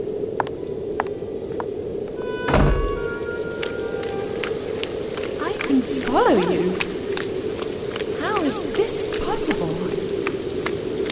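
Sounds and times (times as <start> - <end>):
rain falling: 0.0 - 11.1
sharp drips: 3.4 - 11.1
speech: 5.7 - 6.9, 8.5 - 10.3.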